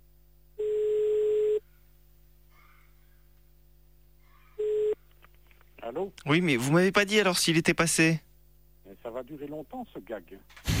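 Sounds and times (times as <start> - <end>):
telephone ringback tones while calling someone back: 0.6 - 1.6, 4.6 - 5.0
speech: 5.9 - 8.3, 9.2 - 10.7.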